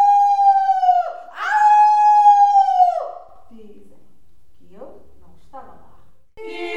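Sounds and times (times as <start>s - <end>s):
person imitating a wolf howling at the moon: 0.0s - 3.3s.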